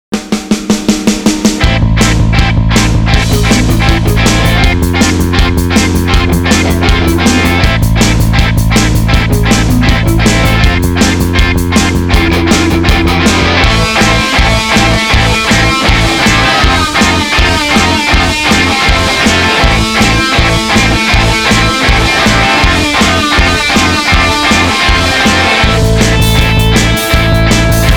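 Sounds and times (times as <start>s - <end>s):
energetic confident indie rock music: 0.4s - 27.9s.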